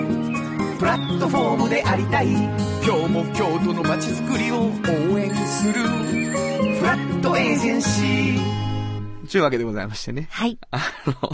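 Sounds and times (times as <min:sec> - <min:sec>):
soft music in a sound logo: 0:00.0 - 0:10.2
speech: 0:00.8 - 0:08.7, 0:09.3 - 0:11.3
bicycle bell ringing in a sound logo for a Kyoto rental housing company: 0:05.2 - 0:06.7
laughter: 0:10.7 - 0:11.3.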